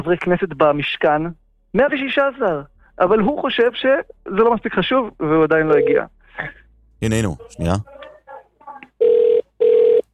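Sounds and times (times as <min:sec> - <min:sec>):
speech: 0:00.0 - 0:08.0
murmured voices: 0:07.0 - 0:08.8
international phone call ringback tone: 0:09.0 - 0:10.0.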